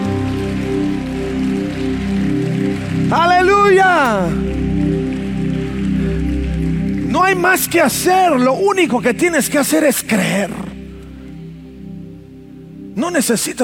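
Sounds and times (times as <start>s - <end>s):
audience applauding: 0.0s - 8.4s
music: 0.0s - 13.6s
person calling out: 3.1s - 4.4s
speech: 7.3s - 10.7s, 13.0s - 13.6s.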